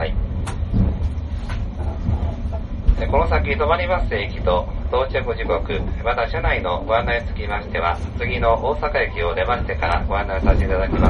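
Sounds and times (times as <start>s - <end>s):
sleeper limited express train running: 0.0s - 11.0s
speech: 3.1s - 11.0s.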